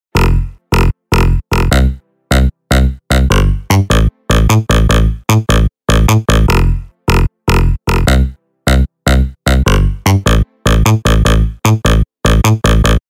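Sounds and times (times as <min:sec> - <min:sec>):
electro bass: 0:00.1 - 0:13.0.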